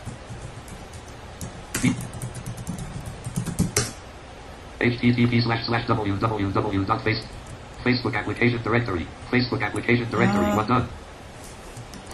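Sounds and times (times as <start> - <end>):
typing on a computer keyboard: 0.0 - 4.0
speech: 1.8 - 2.2, 4.8 - 11.0.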